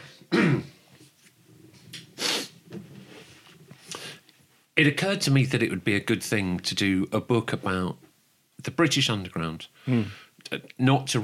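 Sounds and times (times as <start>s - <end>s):
person clearing throat: 0.3s - 0.8s
person coughing: 0.3s - 0.8s
quiet breathing: 2.5s - 4.3s, 9.7s - 10.4s
speech: 4.8s - 11.2s.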